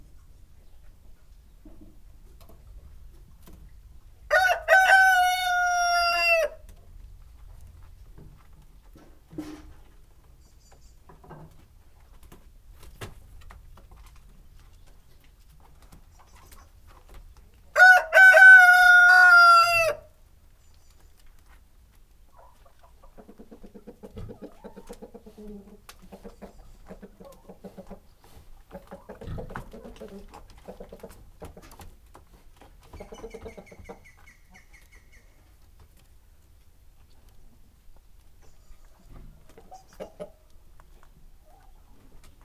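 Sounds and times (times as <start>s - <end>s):
rooster crowing in the morning in a farmyard: 4.3s - 6.6s, 17.8s - 20.1s.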